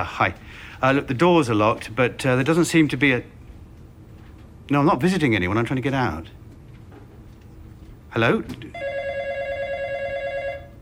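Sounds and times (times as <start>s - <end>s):
speech: 0.0s - 3.4s, 4.7s - 6.4s, 8.1s - 8.9s
office telephone ringing: 8.7s - 10.8s.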